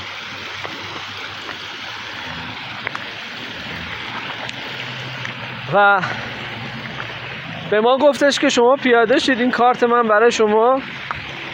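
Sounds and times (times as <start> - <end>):
water cascading like a small waterfall under an old stone bridge: 0.0 - 11.5
speech: 5.7 - 6.3, 7.7 - 11.0.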